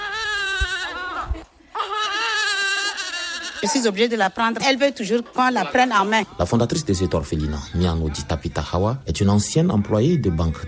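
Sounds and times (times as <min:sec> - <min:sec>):
one-month-old baby crying at an orphanage: 0:00.0 - 0:04.1
speech: 0:03.6 - 0:10.6.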